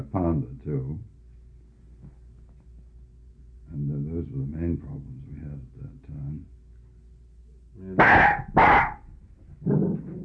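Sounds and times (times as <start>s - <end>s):
speech: 0.0s - 1.1s, 3.7s - 5.1s
dog barking: 8.0s - 9.0s
dog grumbling: 8.0s - 9.0s, 9.6s - 10.2s.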